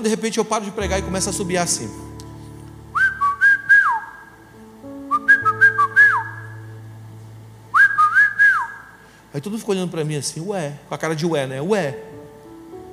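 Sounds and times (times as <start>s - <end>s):
speech: 0.0s - 2.2s, 9.4s - 12.1s
soft sustained tone: 0.8s - 7.8s
person whistling a short melodic phrase imitating a whistle heard in their ear: 2.9s - 4.3s, 5.1s - 6.6s, 7.7s - 8.9s.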